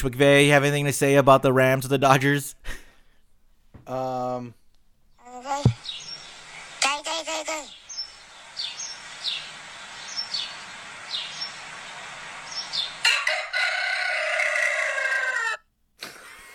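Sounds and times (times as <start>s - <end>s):
speech: 0.0s - 2.8s, 3.8s - 4.6s
high chirping calls: 5.2s - 13.1s
steady hiss: 5.2s - 13.1s
rooster crowing: 10.2s - 15.7s.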